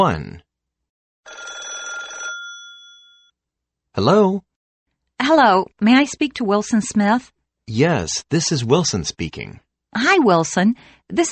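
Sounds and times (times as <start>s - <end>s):
speech: 0.0s - 0.4s, 4.0s - 4.5s, 5.2s - 11.2s
old-style telephone bell ringing: 1.2s - 3.4s.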